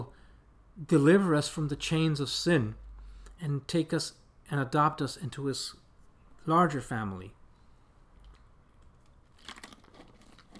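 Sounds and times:
speech: 0.8s - 2.8s, 3.4s - 5.8s, 6.4s - 7.4s
plastic water bottle crinkling: 8.2s - 10.5s.

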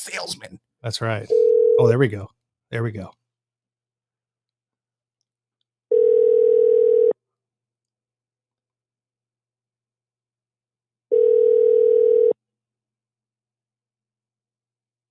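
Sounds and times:
speech: 0.0s - 3.2s
electronic ringing tone on a phone line: 1.3s - 1.8s, 5.9s - 7.2s, 11.1s - 12.4s.

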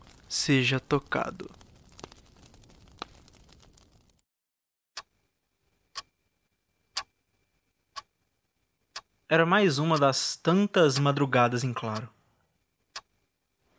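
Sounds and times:
rustling noise: 0.0s - 4.2s
speech: 0.3s - 1.6s, 9.3s - 12.2s
clock ticking: 9.8s - 12.1s.

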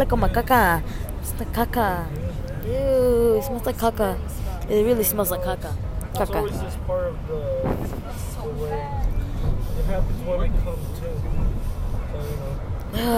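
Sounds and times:
speech: 0.0s - 9.1s, 9.8s - 13.1s
low rumble of a moving vehicle: 0.0s - 13.1s.

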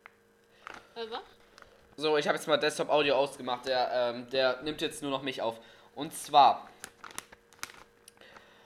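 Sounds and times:
speech: 2.0s - 6.8s
paper chips bag crinkling while handled: 6.7s - 8.5s.

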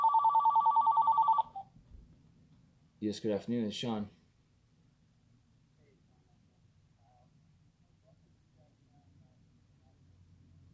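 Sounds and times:
telephone ringing with electronic trill: 0.0s - 1.7s
speech: 3.0s - 4.2s.

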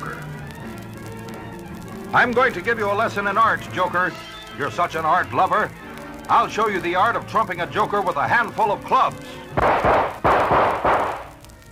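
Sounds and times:
speech: 2.1s - 10.0s
gunshots: 9.6s - 11.4s.

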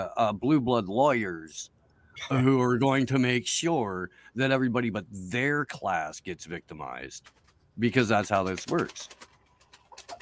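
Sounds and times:
speech: 0.0s - 9.3s
chicken clucking softly in a kitchen: 9.4s - 10.1s.

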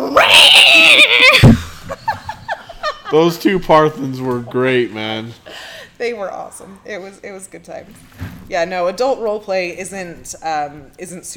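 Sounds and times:
human voice imitating a cat yowl during live-action roleplay: 0.0s - 1.6s
speech: 0.3s - 1.4s, 3.1s - 11.3s.

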